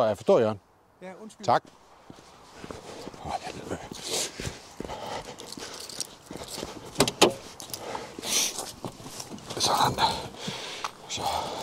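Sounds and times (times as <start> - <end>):
speech: 0.0 - 5.1, 11.2 - 11.6
rustling and shuffling of someone getting into a car: 1.6 - 11.6
car door shutting: 7.0 - 7.4.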